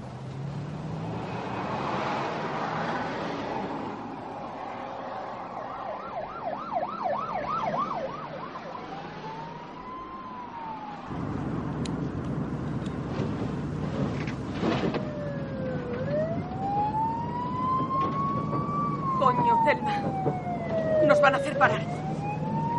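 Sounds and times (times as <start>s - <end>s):
car and road noise: 0.0s - 22.7s
police car siren wailing: 4.7s - 11.3s, 15.0s - 22.7s.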